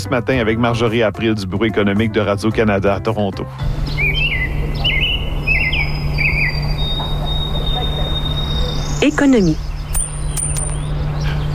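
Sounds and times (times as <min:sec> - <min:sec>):
speech: 0:00.0 - 0:04.2, 0:09.0 - 0:09.7
birds chirping at a lake in Quebec or Ontario: 0:03.6 - 0:11.5
steady high insect-like tone: 0:03.7 - 0:10.9
low continuous hum: 0:03.7 - 0:11.5.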